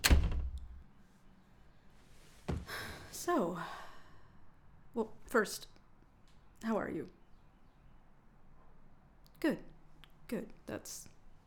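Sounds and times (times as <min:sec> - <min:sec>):
office door swinging shut with thud: 0:00.0 - 0:00.8
soft breathing: 0:01.9 - 0:04.5
speech: 0:03.2 - 0:03.8, 0:05.0 - 0:05.7, 0:06.6 - 0:07.2, 0:09.4 - 0:09.7, 0:10.3 - 0:11.1.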